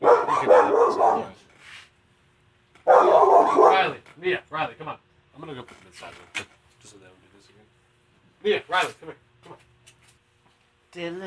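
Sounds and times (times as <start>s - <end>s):
dogs barking through a fence at someone walking by: 0.0s - 1.4s, 2.8s - 4.0s
speech: 4.2s - 7.6s, 8.4s - 9.2s, 11.0s - 11.2s.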